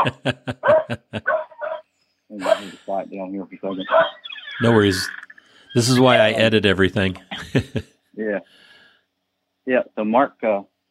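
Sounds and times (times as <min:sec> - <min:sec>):
laughter: 0:00.0 - 0:01.3, 0:02.4 - 0:03.0, 0:04.6 - 0:05.1, 0:05.8 - 0:07.8
speech: 0:00.0 - 0:01.3, 0:03.0 - 0:05.2, 0:05.8 - 0:07.8, 0:09.7 - 0:10.8
dogs barking excitedly: 0:00.0 - 0:01.8, 0:02.4 - 0:02.8, 0:03.7 - 0:05.0
dog yelping: 0:00.6 - 0:01.8, 0:03.7 - 0:06.1.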